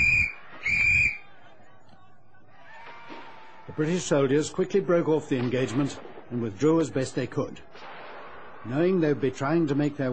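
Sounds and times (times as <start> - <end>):
sharp shrill whistle blasts: 0.0 - 1.3
speech: 3.8 - 7.8, 8.6 - 10.1.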